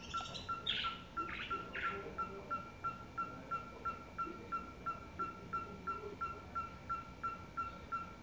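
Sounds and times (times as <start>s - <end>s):
owl call: 0.0s - 2.3s
bird chirps: 0.0s - 8.1s.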